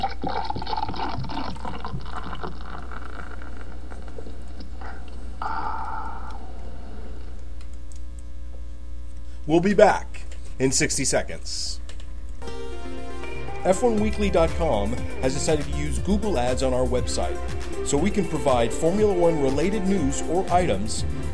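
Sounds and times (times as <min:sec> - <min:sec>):
sparkling water pouring into a glass: 0:00.1 - 0:03.7
speech: 0:09.5 - 0:11.8, 0:13.7 - 0:21.3.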